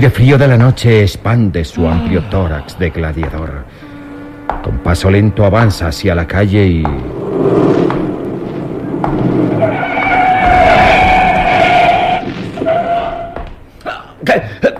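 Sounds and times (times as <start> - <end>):
speech: 0.0 - 3.8, 4.6 - 8.0, 14.3 - 14.6
thumps: 3.1 - 13.7
car tires screeching in a long skid: 3.6 - 13.4.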